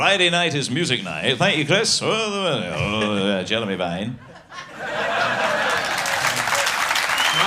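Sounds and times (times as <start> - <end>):
speech: 0.0 - 5.4
laughter: 4.2 - 6.8
studio audience clapping: 5.2 - 7.4.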